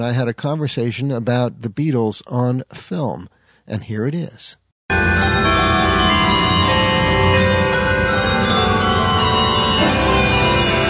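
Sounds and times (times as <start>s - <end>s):
speech: 0.0s - 4.6s
many bells pealing: 4.9s - 10.8s.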